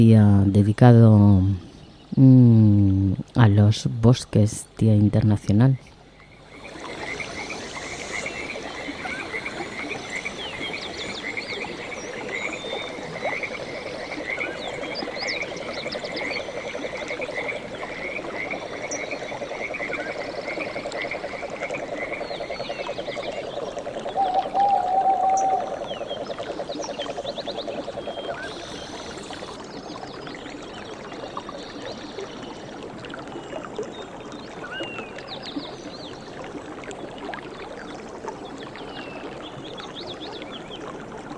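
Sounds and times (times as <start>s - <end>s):
speech: 0.0s - 5.9s
frogs croaking in a forest: 2.9s - 35.8s.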